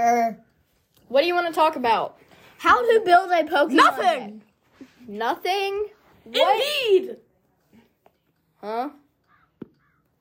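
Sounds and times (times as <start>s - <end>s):
speech: 1.1s - 4.4s, 5.0s - 7.2s, 8.6s - 9.0s
crow cawing: 9.3s - 10.1s.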